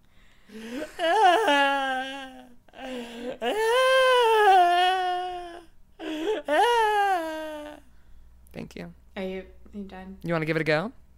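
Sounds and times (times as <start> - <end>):
voice imitating a woman's wailing and weeping: 0.5 - 7.9
speech: 10.1 - 11.0.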